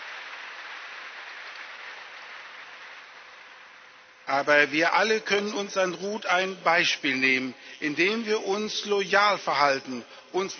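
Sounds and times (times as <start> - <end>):
audience applause at a religious gathering: 0.0 - 4.2
speech: 4.3 - 10.5.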